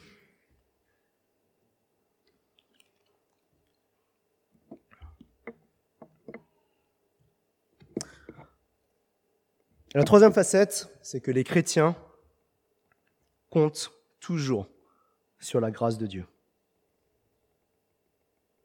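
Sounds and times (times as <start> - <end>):
person drinking a little water: 2.3 - 4.0, 4.6 - 5.6
speech: 10.0 - 12.1, 13.5 - 14.7, 15.4 - 16.3.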